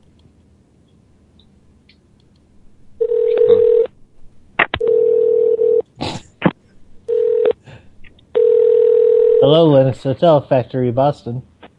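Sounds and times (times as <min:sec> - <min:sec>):
telephone line tones from stuck phone lines ringing: 0:03.0 - 0:03.9, 0:04.8 - 0:05.8, 0:07.1 - 0:07.6, 0:08.4 - 0:09.5
telephone busy signal: 0:03.2 - 0:03.9
speech: 0:09.5 - 0:11.5.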